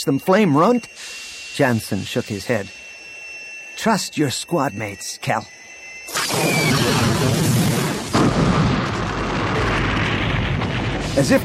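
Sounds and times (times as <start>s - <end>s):
speech: 0.0s - 2.8s, 3.8s - 5.6s, 6.3s - 7.4s, 11.2s - 11.4s
laser blast hitting a gun emplacement at a spaceport: 6.1s - 11.4s.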